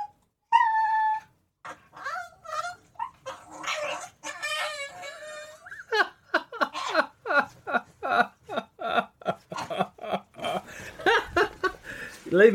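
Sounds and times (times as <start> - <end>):
two dogs squabbling over a bone: 1.6 - 6.0, 6.6 - 7.1
laughter: 5.9 - 11.9
speech: 12.3 - 12.5.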